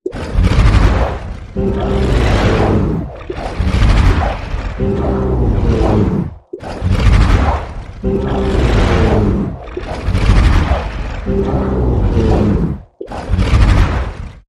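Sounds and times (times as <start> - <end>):
non-human creature growls: 0.2 - 13.9.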